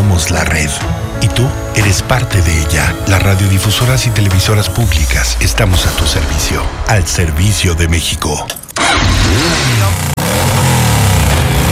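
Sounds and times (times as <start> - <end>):
speech: 0.2 - 10.1
motorcycle engine revving in throttle bursts: 8.8 - 11.7.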